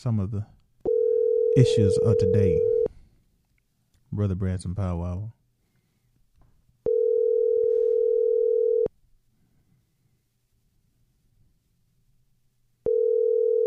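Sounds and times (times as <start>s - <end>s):
speech: 0.0s - 0.6s, 1.6s - 2.8s, 4.1s - 5.4s
phone line electronic ringback tone as a call to a guest is placed: 0.9s - 2.9s, 6.9s - 8.9s, 12.8s - 13.6s.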